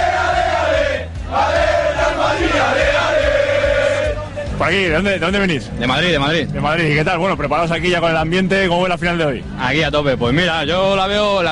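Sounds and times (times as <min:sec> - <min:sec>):
football supporters chanting in unison before a cup final in Valencia: 0:00.0 - 0:04.2
speech: 0:04.7 - 0:11.5.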